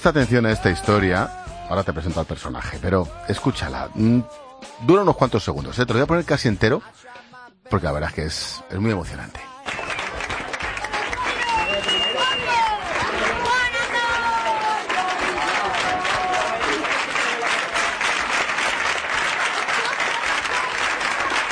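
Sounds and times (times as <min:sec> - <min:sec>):
speech: 0:00.0 - 0:09.5
excited voices and cheers: 0:09.7 - 0:21.5
students and teachers applauding in an echoing school corridor: 0:09.7 - 0:21.5.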